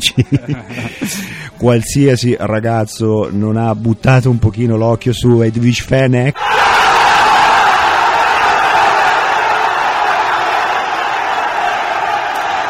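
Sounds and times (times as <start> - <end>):
laughter: 0.0 - 1.6
speech: 0.0 - 6.7
large crowd cheering with voices and whoops: 6.4 - 12.6.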